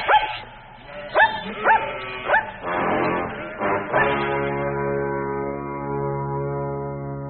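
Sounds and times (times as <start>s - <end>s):
dog barking in quick loud bursts: 0.0s - 0.5s, 1.1s - 2.6s, 4.0s - 4.3s
long steady drawn-out tone: 0.0s - 7.2s.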